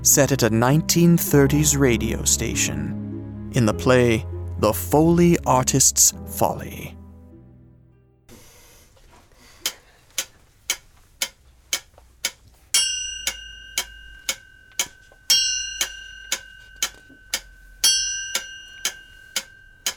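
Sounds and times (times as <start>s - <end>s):
speech: 0.0s - 7.0s
clock ticking: 9.6s - 19.9s
clock bell chiming: 10.7s - 19.9s.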